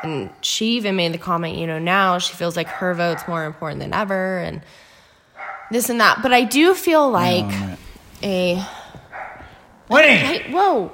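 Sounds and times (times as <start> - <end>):
speech: 0.0 - 4.9, 5.7 - 8.8, 9.9 - 10.9
dog barking at home: 2.6 - 3.6, 5.4 - 5.8, 9.1 - 9.6.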